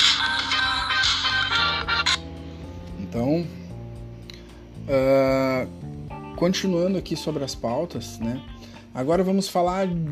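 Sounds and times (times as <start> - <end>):
telephone ringing with a bright tonal electronic ringtone: 0.0 - 2.2
speech: 4.9 - 5.8, 6.4 - 10.1.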